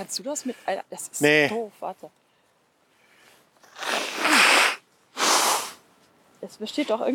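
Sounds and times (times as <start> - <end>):
speech: 0.0 - 2.2, 6.4 - 7.1
forceful nose blows into a tissue: 3.6 - 5.8.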